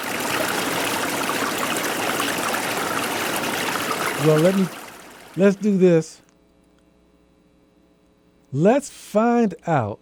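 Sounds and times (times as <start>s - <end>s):
stream of water flowing: 0.0s - 5.7s
speech: 4.2s - 4.8s, 5.4s - 6.2s, 8.5s - 10.0s.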